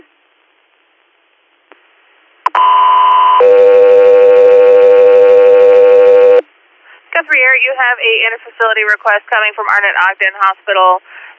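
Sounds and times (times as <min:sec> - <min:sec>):
two-tone radio dispatch alert tones: 0:02.5 - 0:06.4
speech: 0:07.7 - 0:11.3.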